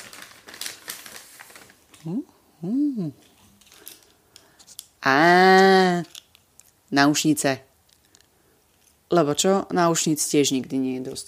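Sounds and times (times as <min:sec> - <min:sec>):
paper bag being opened, crinkling and rustling: 0:00.0 - 0:02.1
person murmuring: 0:02.0 - 0:03.3
speech: 0:02.0 - 0:03.3, 0:05.0 - 0:06.2, 0:06.9 - 0:07.7, 0:09.1 - 0:11.2.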